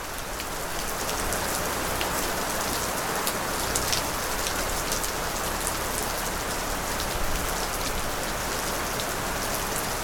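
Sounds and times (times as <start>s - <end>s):
rain: 0.0s - 10.0s.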